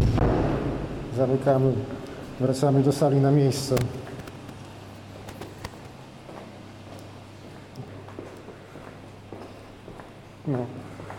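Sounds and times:
constant low hum: 0.0 - 11.1
speech: 1.2 - 4.1, 10.5 - 10.8
footsteps walking toward a staircase: 3.7 - 11.1.

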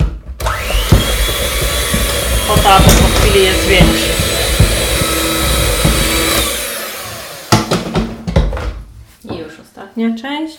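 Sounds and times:
clattering and knocking bursts: 0.0 - 6.7, 7.5 - 9.5
electric mixer whirring at low speed: 0.4 - 8.1
speech: 2.7 - 4.1.

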